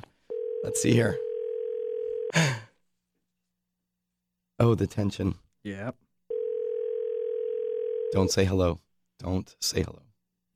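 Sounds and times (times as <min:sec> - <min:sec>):
telephone dial tone: 0:00.3 - 0:02.3, 0:06.3 - 0:08.1
speech: 0:00.6 - 0:01.2, 0:04.6 - 0:06.0, 0:08.1 - 0:10.1.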